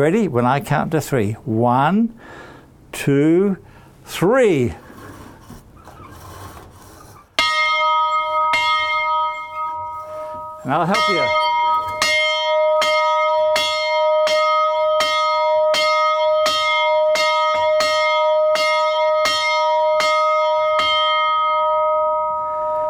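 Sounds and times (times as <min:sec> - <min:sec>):
speech: 0:00.0 - 0:04.8, 0:10.7 - 0:11.5
large college bell ringing: 0:07.4 - 0:22.8.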